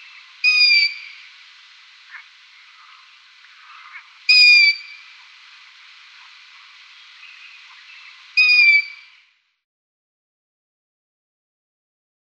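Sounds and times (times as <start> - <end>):
Long-eared owl high squeaky calls: 0.0 - 1.4, 2.1 - 5.2, 7.2 - 9.1
faint hiss: 0.0 - 9.6.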